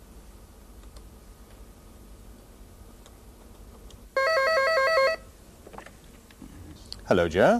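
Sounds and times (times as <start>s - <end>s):
faint room noise: 0.0s - 7.5s
telephone ringing with two-tone electronic warble: 4.2s - 5.3s
speech: 7.1s - 7.5s.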